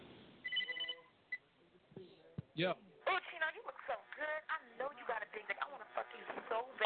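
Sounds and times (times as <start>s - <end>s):
telephone ringing with an electronic trill: 0.4s - 1.2s
speech: 2.6s - 2.9s, 3.9s - 6.8s.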